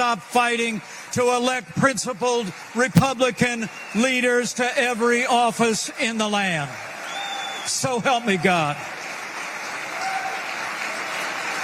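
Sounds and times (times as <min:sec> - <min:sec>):
speech: 0:00.0 - 0:06.9, 0:07.6 - 0:09.0
large crowd applauding in a standing ovation after a speech: 0:00.0 - 0:11.6.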